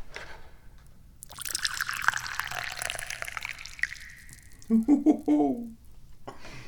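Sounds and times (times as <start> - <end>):
tea pouring into a cup: 1.2 - 6.0
person speaking briefly: 4.6 - 5.8.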